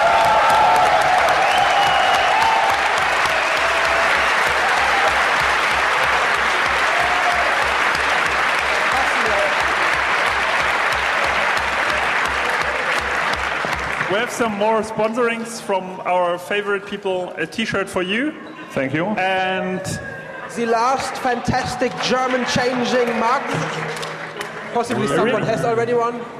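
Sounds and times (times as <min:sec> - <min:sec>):
cheers: 0:00.0 - 0:14.7, 0:18.2 - 0:25.4
large audience applauding a contest winner: 0:00.0 - 0:15.0, 0:20.6 - 0:25.5
speech: 0:14.3 - 0:24.1, 0:24.7 - 0:26.3.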